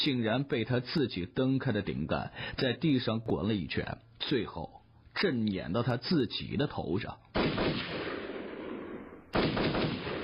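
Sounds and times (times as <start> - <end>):
speech: 0.0 - 8.1
dense rattle of rapid gunfire: 7.4 - 10.2.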